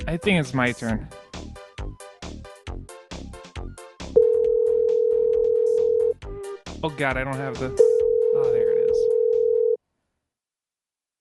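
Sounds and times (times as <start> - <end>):
speech: 0.1 - 1.2, 6.8 - 8.6
telephone ringing: 4.2 - 6.2, 7.8 - 9.8.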